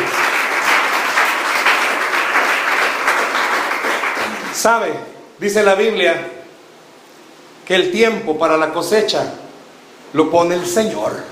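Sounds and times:
large crowd applauding: 0.0s - 4.7s
speech: 4.6s - 6.4s, 7.7s - 9.4s, 10.1s - 11.3s.

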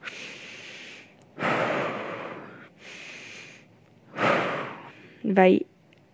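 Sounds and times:
deep breathing as part of a breathing exercise: 0.0s - 5.3s
speech: 5.3s - 5.7s.

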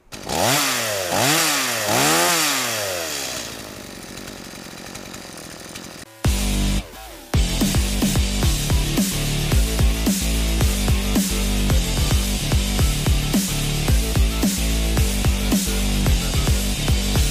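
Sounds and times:
chainsaw revving and idling: 0.0s - 17.2s.

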